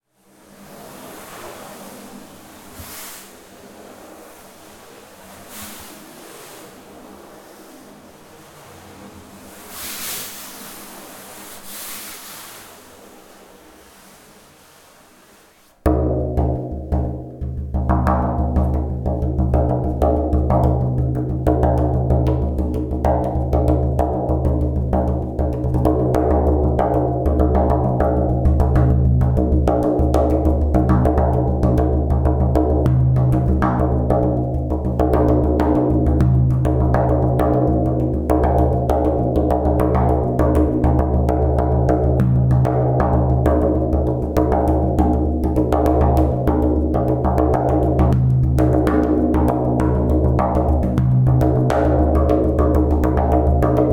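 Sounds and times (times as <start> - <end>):
drumming: 15.9 - 53.9.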